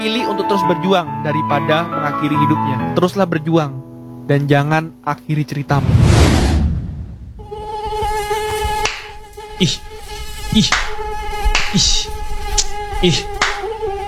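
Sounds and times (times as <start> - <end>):
speech: 0.0 - 6.5, 9.6 - 9.9, 10.5 - 11.0, 11.7 - 12.2, 13.0 - 13.3
low rumble: 5.7 - 7.5
mosquitoes buzzing: 7.4 - 14.0.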